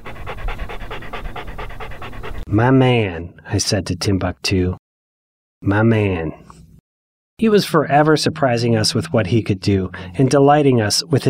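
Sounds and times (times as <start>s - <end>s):
dog panting: 0.0s - 2.5s
speech: 2.5s - 4.8s, 5.6s - 6.6s, 7.4s - 11.2s.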